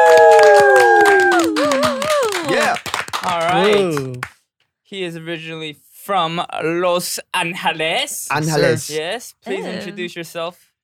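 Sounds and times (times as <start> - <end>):
high voice holding a long gliding whoop: 0.0 - 2.8
hand clapping as a guest is introduced: 0.0 - 4.4
speech: 4.9 - 10.7.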